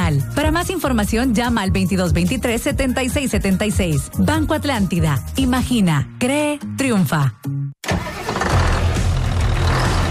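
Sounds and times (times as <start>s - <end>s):
speech: 0.2s - 8.1s
heavy tractor engine starting: 7.8s - 10.0s.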